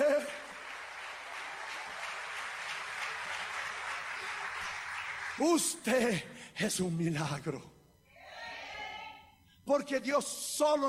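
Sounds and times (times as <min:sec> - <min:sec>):
church audience applauding during a service: 0:00.0 - 0:05.8
speech: 0:05.4 - 0:07.8, 0:09.7 - 0:10.8.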